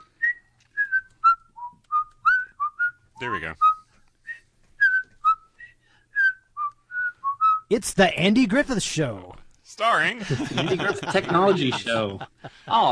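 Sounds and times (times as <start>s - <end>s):
person whistling a bouncy cheerful fishing theme tune: 0.0s - 3.0s, 3.6s - 7.7s
speech: 3.2s - 3.7s, 7.7s - 12.9s
laughter: 10.1s - 12.9s.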